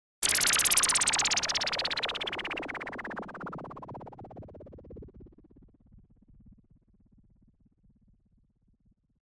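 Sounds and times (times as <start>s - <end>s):
OB-X synthesizer filter effect: 0.2s - 4.5s.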